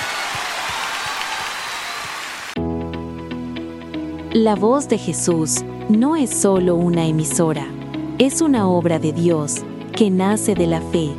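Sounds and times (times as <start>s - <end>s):
loud dense applause from a crowd: 0.0s - 2.6s
speech: 4.4s - 11.1s.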